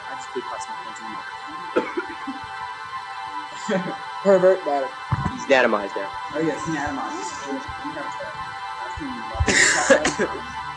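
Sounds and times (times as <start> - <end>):
laughter: 0.0 - 2.6, 9.2 - 10.6
low murmur of voices: 0.0 - 10.7
speech: 0.4 - 2.6, 3.6 - 10.6
man giving a short raspy cough: 1.7 - 2.3, 9.5 - 10.4.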